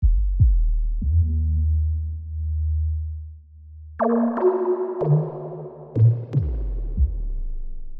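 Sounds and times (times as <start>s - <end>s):
kick drum: 0.0s - 1.0s, 6.0s - 7.4s
bass loop: 0.0s - 7.9s.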